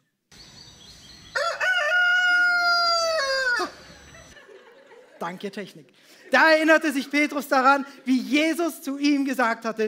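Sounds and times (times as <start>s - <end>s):
rooster crowing: 1.2s - 4.3s
laughter: 3.6s - 8.5s
speech: 5.2s - 9.8s.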